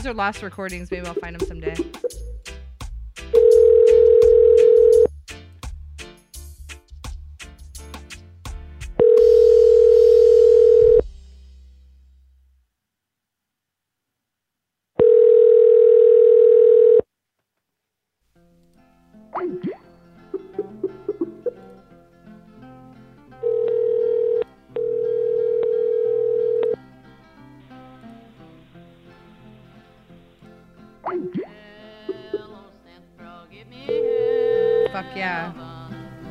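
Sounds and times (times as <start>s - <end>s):
speech: 0.0s - 2.3s
telephone dial tone: 3.4s - 5.1s, 9.0s - 11.0s, 15.0s - 17.1s, 23.4s - 26.8s, 33.9s - 35.0s.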